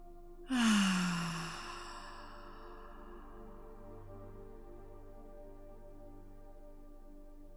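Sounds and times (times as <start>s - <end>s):
slow deep sighing breath with faint voiced tone: 0.5s - 3.5s.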